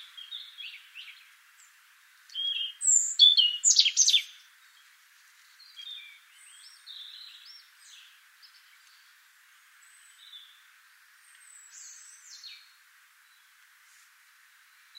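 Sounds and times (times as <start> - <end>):
European robin Erithacus rubecula singing: 0.0 - 4.9, 5.5 - 9.2, 9.8 - 13.6.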